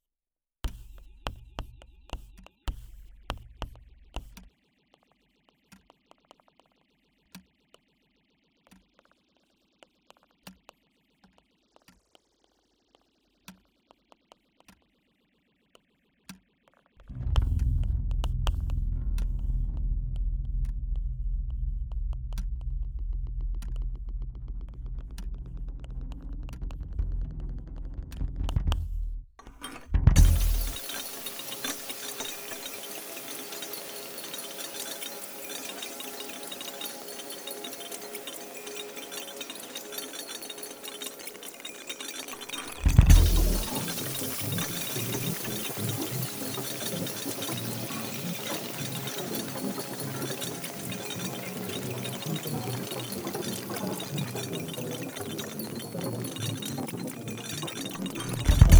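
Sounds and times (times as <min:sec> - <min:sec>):
processed and level-adjusted music stems of a mix: 0:17.0 - 0:58.7.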